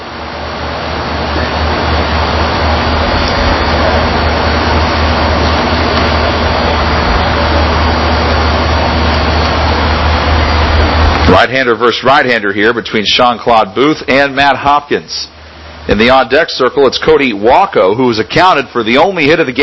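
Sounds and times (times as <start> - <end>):
train passing: 0.0 - 15.1
speech: 11.4 - 19.6.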